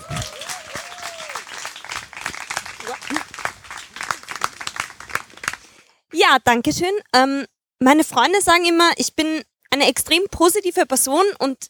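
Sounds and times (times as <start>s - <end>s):
whoops and voices: 0.0s - 1.5s
crowd applauding: 0.0s - 5.8s
speech: 6.3s - 11.6s.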